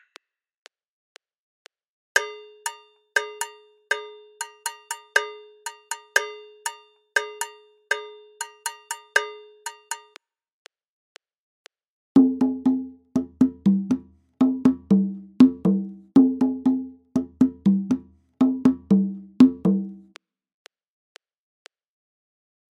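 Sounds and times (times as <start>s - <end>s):
Latin American Mozambique percussion rhythm: 2.2s - 10.1s, 12.2s - 20.1s.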